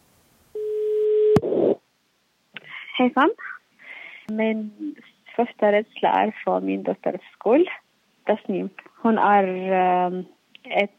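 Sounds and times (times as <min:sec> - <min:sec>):
telephone ringback tone of a call to a mother in Malmö, Sweden: 0:00.6 - 0:01.4
speech: 0:03.0 - 0:03.5, 0:04.3 - 0:10.9.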